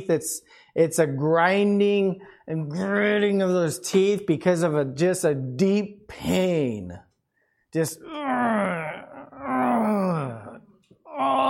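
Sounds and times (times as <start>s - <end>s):
speech: 0.0s - 7.1s, 7.7s - 8.6s
human voice imitating wailing in torment: 8.0s - 11.4s.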